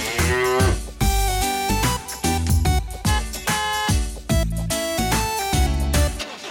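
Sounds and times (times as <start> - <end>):
cow mooing: 0.0 - 0.9
busy upbeat musical backing: 0.0 - 6.5.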